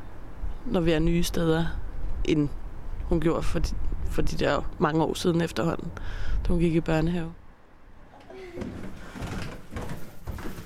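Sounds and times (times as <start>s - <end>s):
speech: 0.7s - 7.4s, 8.6s - 8.9s
footsteps thudding down house basement stairs: 8.0s - 10.6s.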